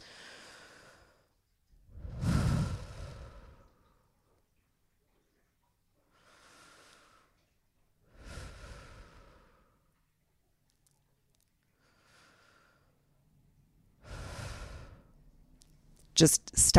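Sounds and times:
deep slow breaths during a guided breathing exercise: 0:00.0 - 0:04.2, 0:06.1 - 0:09.9, 0:11.8 - 0:13.2, 0:14.0 - 0:15.4
speech: 0:16.2 - 0:16.7.

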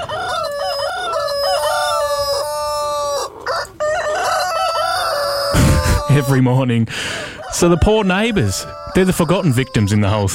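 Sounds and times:
roosters crowing: 0:00.0 - 0:10.3
speech: 0:06.2 - 0:10.3.

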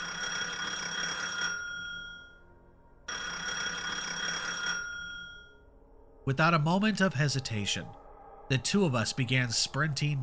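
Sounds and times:
office telephone ringing in electronic trills: 0:00.0 - 0:02.5, 0:03.1 - 0:05.6
speech: 0:06.3 - 0:10.2.

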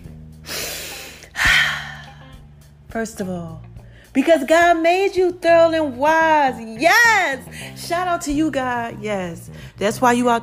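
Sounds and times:
person taking a deep breath: 0:00.4 - 0:02.4
speech: 0:02.9 - 0:10.4.

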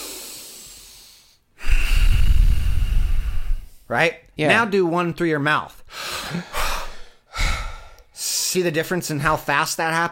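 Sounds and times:
breathing in and out through the nose: 0:00.0 - 0:03.8, 0:05.9 - 0:08.2
speech: 0:03.9 - 0:06.6, 0:08.5 - 0:10.0.

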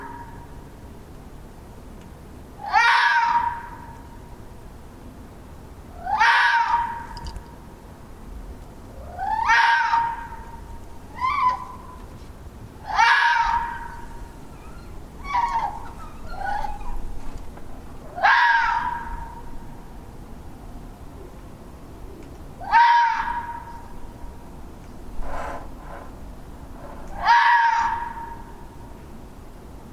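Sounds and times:
red fox calling with hoarse scream-like calls: 0:00.0 - 0:00.5, 0:02.6 - 0:04.0, 0:06.0 - 0:07.2, 0:09.0 - 0:12.0, 0:12.8 - 0:17.2, 0:18.1 - 0:19.5, 0:22.6 - 0:23.9, 0:27.1 - 0:28.7.

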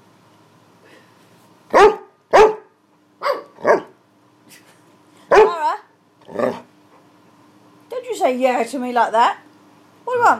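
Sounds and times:
dog barking: 0:01.7 - 0:04.0, 0:05.3 - 0:05.6
speech: 0:08.2 - 0:09.4, 0:10.2 - 0:10.3.

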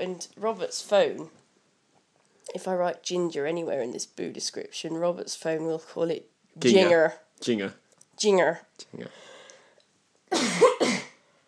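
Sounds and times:
speech: 0:00.0 - 0:01.4, 0:02.5 - 0:09.3
person coughing: 0:10.3 - 0:11.2.

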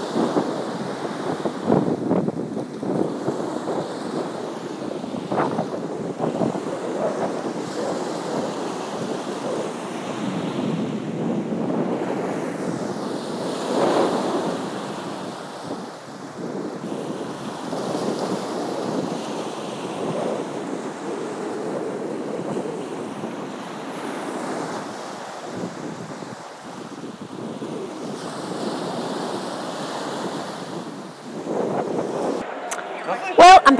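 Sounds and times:
gusty wind buffeting the microphone: 0:00.0 - 0:33.6
ocean waves breaking on shore: 0:00.0 - 0:33.7.

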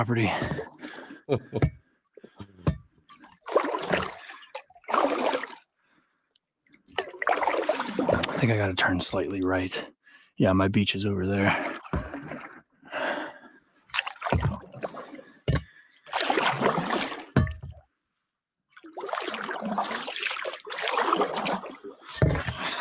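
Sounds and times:
speech: 0:00.0 - 0:00.7, 0:01.3 - 0:01.8, 0:08.4 - 0:11.8
cast iron pan used as a paddle splashing through water: 0:00.0 - 0:05.7, 0:06.6 - 0:09.0, 0:11.3 - 0:12.7, 0:13.9 - 0:17.8, 0:18.7 - 0:22.7.

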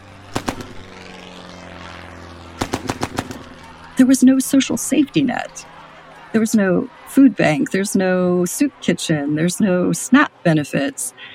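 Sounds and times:
low-flying propeller fighter plane engine roaring overhead: 0:00.0 - 0:11.3
clusters of sharp rapid bangs: 0:00.2 - 0:00.9, 0:02.6 - 0:03.8
speech: 0:04.0 - 0:11.3.

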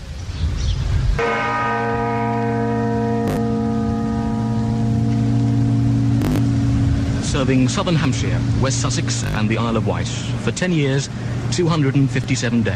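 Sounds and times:
large guildhall clock bell striking: 0:01.2 - 0:12.7
faint rumble: 0:04.5 - 0:12.7
speech: 0:07.4 - 0:12.7.

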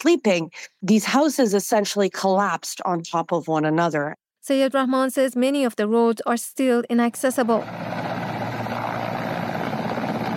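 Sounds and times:
speech: 0:00.0 - 0:08.0
helicopters evacuating the injured at an earthquake disaster scene: 0:07.4 - 0:10.3.

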